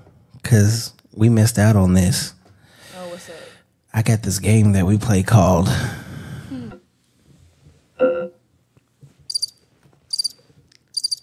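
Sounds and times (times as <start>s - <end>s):
speech: 0.5s - 2.4s, 4.0s - 6.0s
crickets chirping: 9.3s - 10.4s, 11.0s - 11.2s.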